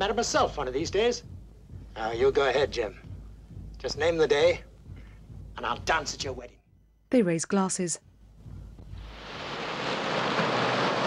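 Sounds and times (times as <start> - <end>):
speech: 0.0 - 1.4, 2.0 - 3.0, 3.8 - 4.7, 5.6 - 8.1
ships ploughing through a rough sea: 9.0 - 11.0.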